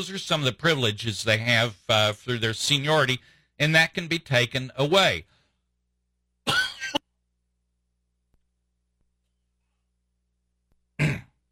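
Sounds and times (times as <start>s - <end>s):
speech: 0.0s - 5.3s
throat clearing and coughing from a scratchy throat: 6.4s - 7.1s, 11.0s - 11.4s.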